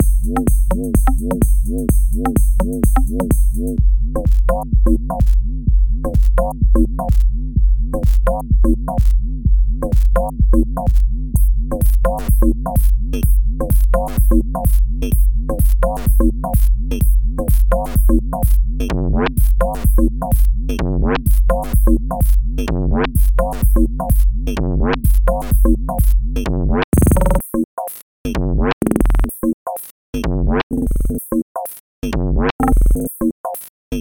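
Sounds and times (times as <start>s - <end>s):
minimal beat: 0.0s - 30.3s, 32.0s - 33.9s.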